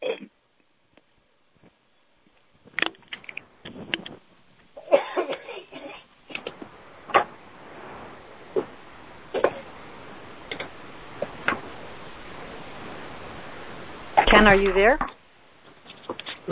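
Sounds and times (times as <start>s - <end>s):
steady thin phone line hiss: 2.5s - 16.5s
person coughing over a phone call: 4.8s - 6.0s
speech: 14.4s - 15.1s.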